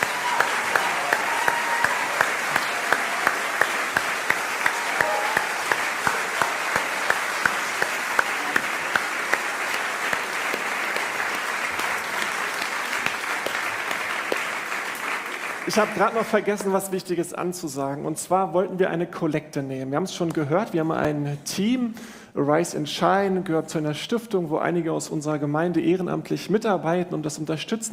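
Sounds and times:
church service congregation applause: 0:00.0 - 0:16.7
speech: 0:15.7 - 0:27.9.

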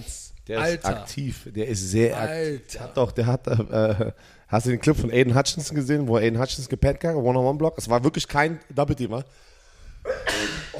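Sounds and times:
speech: 0:00.0 - 0:09.5
sneeze: 0:10.1 - 0:10.7.

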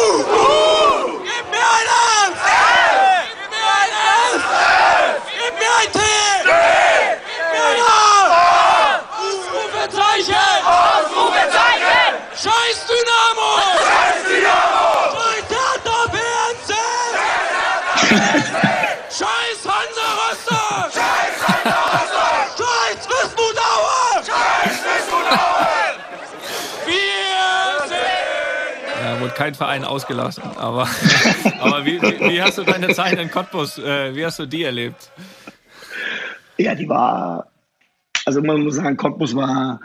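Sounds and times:
large stadium crowd of football fans chanting and roaring: 0:00.2 - 0:12.4, 0:13.4 - 0:29.4
laughter: 0:17.8 - 0:23.0, 0:24.2 - 0:27.8, 0:30.2 - 0:34.2, 0:34.7 - 0:36.2
speech: 0:29.5 - 0:35.5, 0:36.6 - 0:37.5, 0:38.3 - 0:39.8.

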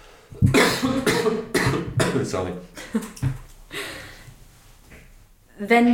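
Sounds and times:
person coughing: 0:00.4 - 0:02.5
speech: 0:02.2 - 0:03.4, 0:05.6 - 0:05.9.

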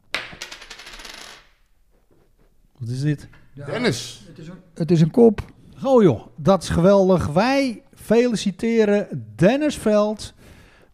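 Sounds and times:
tossed coin striking a hard surface and spinning: 0:00.0 - 0:01.7
speech: 0:02.8 - 0:10.5.

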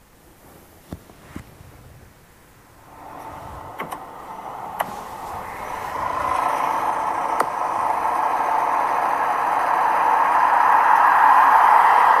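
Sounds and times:
car road whoosh: 0:02.8 - 0:12.1.

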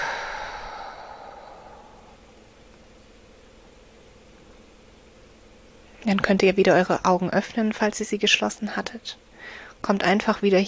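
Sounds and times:
deep breath exhaled through the mouth during a guided relaxation exercise: 0:00.0 - 0:02.2
speech: 0:06.1 - 0:10.6.

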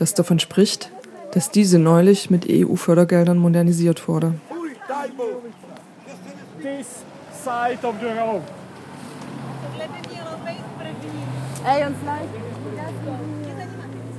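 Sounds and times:
speech: 0:00.0 - 0:05.4, 0:06.6 - 0:08.6, 0:11.6 - 0:12.4
cars rushing past on a country road: 0:04.4 - 0:14.1.

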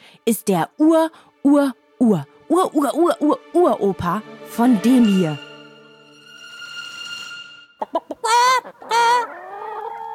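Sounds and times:
speech: 0:00.2 - 0:05.4
chicken clucking: 0:07.8 - 0:10.1.

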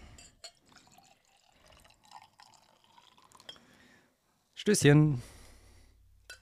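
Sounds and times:
schnapps poured into a glass from a screw-top bottle: 0:00.4 - 0:03.6
speech: 0:04.6 - 0:05.3.

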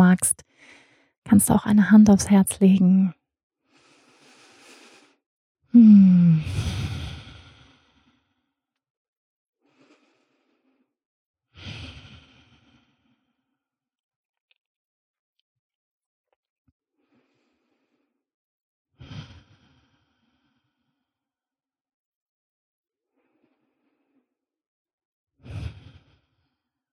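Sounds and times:
speech: 0:00.1 - 0:03.2, 0:05.7 - 0:06.8
slow breathing in and out during a guided relaxation exercise: 0:00.5 - 0:01.1, 0:03.7 - 0:05.2, 0:06.4 - 0:08.5, 0:09.6 - 0:10.9, 0:11.5 - 0:13.6, 0:17.0 - 0:18.2, 0:19.0 - 0:21.1, 0:23.1 - 0:24.3, 0:25.4 - 0:26.6.

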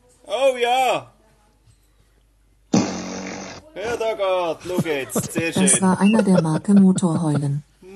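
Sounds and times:
speech: 0:00.5 - 0:01.1, 0:03.8 - 0:07.9
loud buzzy fart: 0:02.7 - 0:03.7
laughter: 0:03.8 - 0:07.9.

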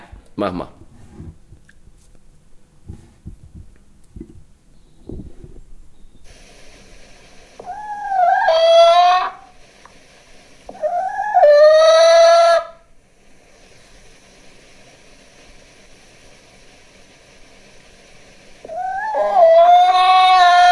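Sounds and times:
speech: 0:00.4 - 0:00.8
hen clucking: 0:07.6 - 0:09.6, 0:10.7 - 0:12.9, 0:18.6 - 0:20.7.

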